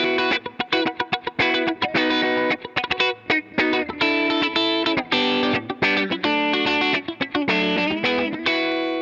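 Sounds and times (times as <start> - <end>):
clean electric guitar through an effects pedal: 0.0 - 8.9.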